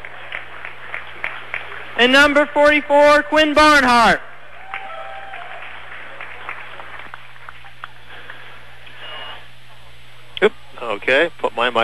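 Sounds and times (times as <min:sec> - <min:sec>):
scattered clapping at a team game: 0:00.0 - 0:02.6, 0:04.4 - 0:08.6
speech: 0:02.0 - 0:04.3, 0:11.0 - 0:11.8
constant roar of crowd noise at a team game: 0:04.3 - 0:06.4
short electronic beep: 0:09.0 - 0:09.5.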